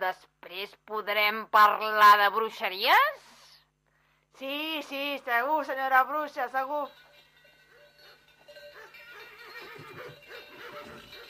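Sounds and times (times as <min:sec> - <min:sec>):
faint steady hum: 0:00.0 - 0:11.2
speech: 0:00.1 - 0:03.3, 0:04.4 - 0:07.0
horse whinnying: 0:07.8 - 0:11.2.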